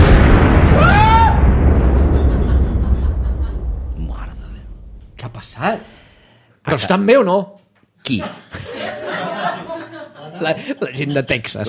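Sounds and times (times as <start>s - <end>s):
spacecraft exploding before landing after foam damage: 0.0s - 6.2s
laughter: 2.0s - 3.7s, 8.2s - 11.6s
speech: 5.6s - 5.9s, 6.7s - 8.9s, 10.4s - 11.6s.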